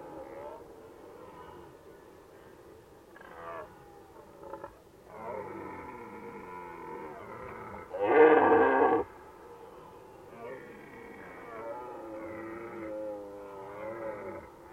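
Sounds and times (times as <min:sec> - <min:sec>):
red deer roaring in Valsolda: 0:05.1 - 0:09.1, 0:10.8 - 0:14.7.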